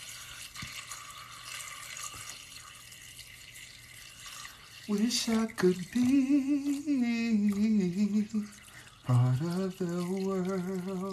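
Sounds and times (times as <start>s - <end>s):
steady stream of water pouring into a container: 0.0s - 11.1s
speech: 4.9s - 11.1s.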